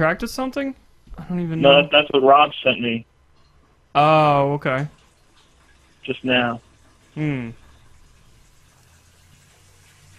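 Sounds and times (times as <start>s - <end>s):
speech: 0.0s - 3.1s, 4.0s - 5.0s, 6.0s - 7.6s
water rushing back through household pipes after being shut off: 4.9s - 10.1s.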